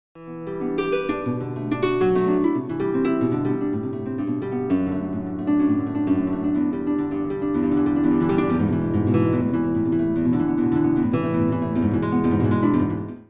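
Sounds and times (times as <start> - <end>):
nylon acoustic guitar: 0.2 - 13.2.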